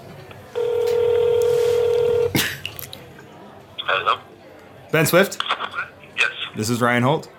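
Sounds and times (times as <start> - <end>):
telephone keypad tones: 0.6 - 2.3
speech: 4.9 - 5.5, 6.5 - 7.3.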